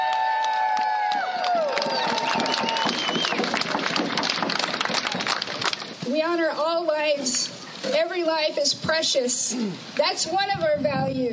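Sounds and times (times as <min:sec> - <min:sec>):
large crowd clapping at a Quinault Indian Nation gathering: 0:00.0 - 0:06.0
whistles from a crowd: 0:02.2 - 0:03.6
speech: 0:06.3 - 0:11.3.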